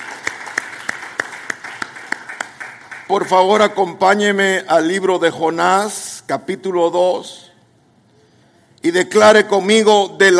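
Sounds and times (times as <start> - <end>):
audience clapping hands in applause: 0.0 - 3.3
speech: 3.1 - 7.4, 8.8 - 10.3.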